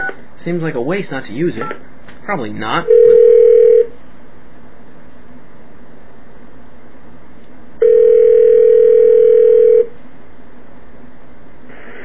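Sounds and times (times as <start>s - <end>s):
speech: 0.4s - 3.2s
payphone dial tone: 2.9s - 3.9s, 7.8s - 9.9s.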